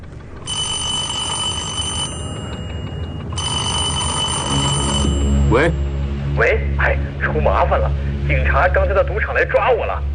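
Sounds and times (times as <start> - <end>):
telephone ringing with a bright trilling tone: 0.4 - 5.5
low rumble: 2.1 - 10.1
speech: 5.5 - 5.8, 7.4 - 10.1.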